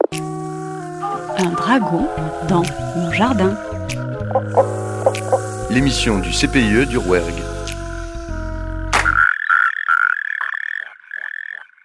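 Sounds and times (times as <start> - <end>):
brief musical tone: 0.0 - 9.1
European tree frog calling: 0.0 - 11.8
speech: 1.4 - 7.5.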